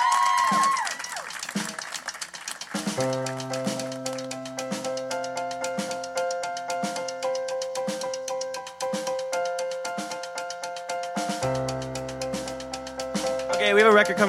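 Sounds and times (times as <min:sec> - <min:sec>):
crowd clapping at a live show: 0:00.0 - 0:05.1
held instrumental chords: 0:02.7 - 0:14.2
speech: 0:03.0 - 0:03.5, 0:13.7 - 0:14.2.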